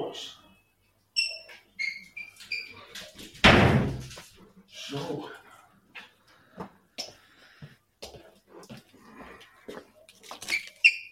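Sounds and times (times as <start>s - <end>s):
speech: 0.1s - 0.4s, 4.9s - 5.4s
small door hinges creaking: 1.2s - 3.4s, 10.4s - 11.1s
small door shutting with a thud: 3.4s - 4.2s.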